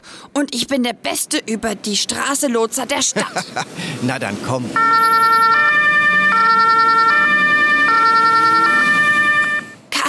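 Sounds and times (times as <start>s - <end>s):
traffic rumble: 0.0s - 10.0s
speech: 0.4s - 5.5s
loud two-tone ambulance siren wailing: 4.8s - 9.8s.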